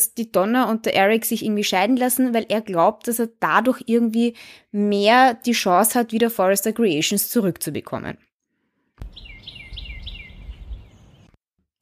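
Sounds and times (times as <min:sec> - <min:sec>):
speech: 0:00.0 - 0:08.3
birds chirping outside behind closed windows in spring: 0:09.0 - 0:11.4.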